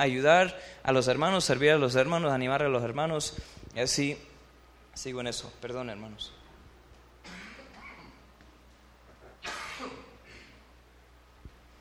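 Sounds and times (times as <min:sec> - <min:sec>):
speech: 0:00.0 - 0:04.3, 0:05.0 - 0:06.4
harsh breathy coughing: 0:07.2 - 0:08.3, 0:09.4 - 0:10.6.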